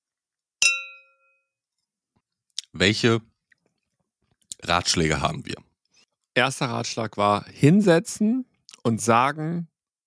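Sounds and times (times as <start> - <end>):
glasses clinking in a toast: 0.6 - 1.3
speech: 2.8 - 3.3, 4.6 - 5.7, 6.4 - 9.7.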